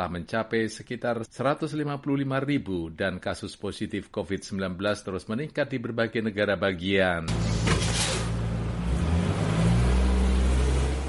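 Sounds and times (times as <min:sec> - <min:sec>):
speech: 0:00.0 - 0:07.9
large school bus engine pulling away from the curb in a residential neighbourhood: 0:07.3 - 0:11.0.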